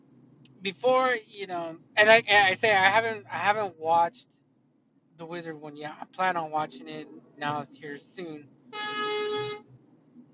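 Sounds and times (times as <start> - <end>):
faint noise: 0.0 - 10.3
speech: 0.6 - 4.4, 5.2 - 9.6
car horn honking: 8.7 - 9.7.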